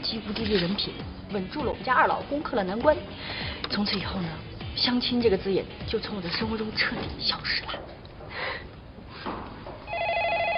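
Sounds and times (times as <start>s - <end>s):
speech: 0.1s - 8.6s
electronic telephone ring tone for an incoming call: 9.9s - 10.5s.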